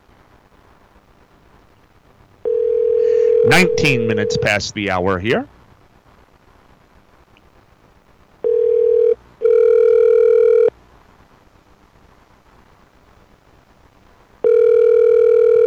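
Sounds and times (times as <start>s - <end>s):
quiet phone line hiss: 2.4s - 5.2s, 8.4s - 10.7s, 14.4s - 15.6s
telephone ringback tone over a phone line: 2.5s - 4.6s, 8.5s - 10.7s, 14.4s - 15.6s
speech: 3.5s - 5.6s.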